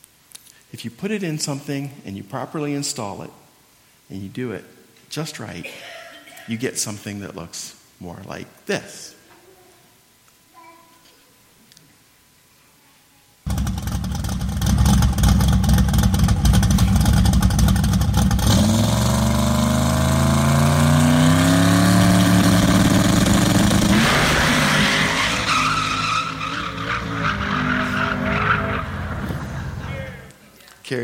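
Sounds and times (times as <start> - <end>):
speech: 0.7 - 3.4, 4.1 - 9.2
car tires screeching and skidding: 13.5 - 30.3
loud car engine revving: 13.5 - 30.3.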